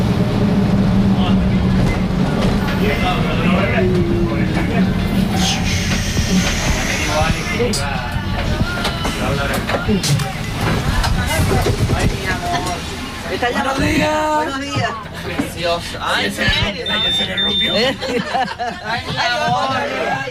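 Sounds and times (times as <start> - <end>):
tram rumbling along rails: 0.0 - 20.2
people talking: 1.1 - 20.2
metallic squeals and clacks of tram: 4.0 - 10.2
laughter: 16.8 - 20.2.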